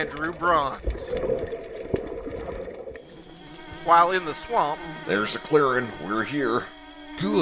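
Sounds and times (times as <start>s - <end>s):
speech: 0.0s - 1.6s, 3.8s - 7.4s
continuous underwater ocean water wash: 0.0s - 3.3s.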